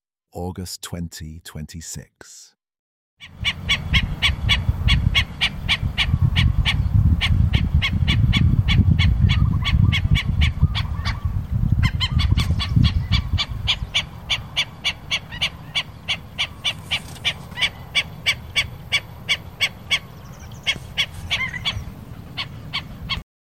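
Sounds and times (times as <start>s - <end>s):
speech: 0.4s - 2.6s, 3.2s - 4.6s
black-necked stilt giving sharp yapping calls on Maui, Hawaii: 3.3s - 23.2s
low rumbling noise: 3.4s - 23.2s.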